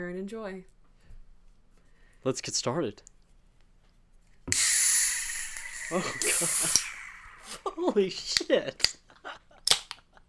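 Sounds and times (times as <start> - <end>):
speech: 0.0 - 0.8, 2.2 - 3.1, 5.9 - 6.9, 7.6 - 9.4
soda fizzing as it pours out upside down: 4.5 - 8.2
soda can cracking open: 4.5 - 9.0, 9.6 - 10.0.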